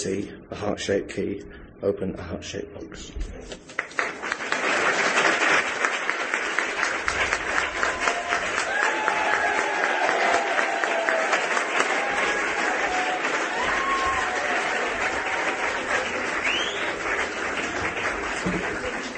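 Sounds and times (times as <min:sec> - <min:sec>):
speech: 0:00.0 - 0:03.9
crowd applauding: 0:03.6 - 0:19.1
crowd cheering and whooping: 0:06.9 - 0:17.9.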